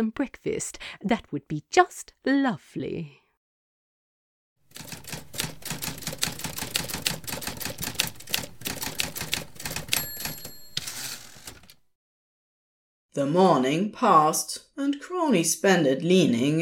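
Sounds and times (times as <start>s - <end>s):
speech: 0.0s - 3.2s, 13.2s - 16.5s
typewriter keys clattering as someone types a novel: 4.7s - 11.8s
typewriter bell ringing: 9.4s - 11.8s.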